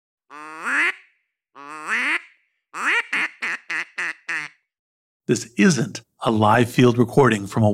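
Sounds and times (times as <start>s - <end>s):
duck call instrument quacking loudly: 0.3s - 4.7s
speech: 5.3s - 7.7s.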